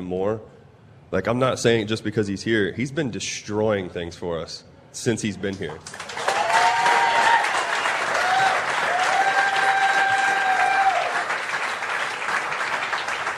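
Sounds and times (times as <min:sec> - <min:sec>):
speech: 0:00.0 - 0:06.2
large crowd clapping loudly: 0:05.8 - 0:13.3.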